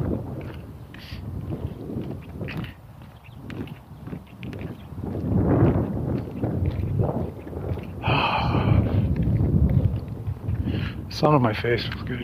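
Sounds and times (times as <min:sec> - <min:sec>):
wind blowing outdoors on a cold day: 0:00.0 - 0:12.2
speech: 0:11.2 - 0:12.2.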